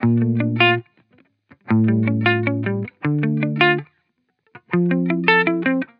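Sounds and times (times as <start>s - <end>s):
hip hop guitar loop in D major: 0.0s - 0.8s, 1.5s - 3.8s, 4.6s - 5.9s.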